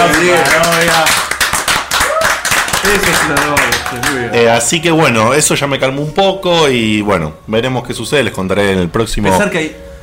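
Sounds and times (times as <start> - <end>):
speech: 0.0 - 1.3, 2.9 - 9.9
hands clapping as applause: 0.0 - 4.5.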